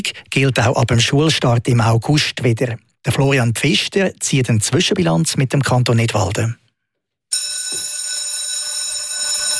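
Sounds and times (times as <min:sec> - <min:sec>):
speech: 0:00.0 - 0:06.6
electric school bell ringing: 0:07.3 - 0:09.5.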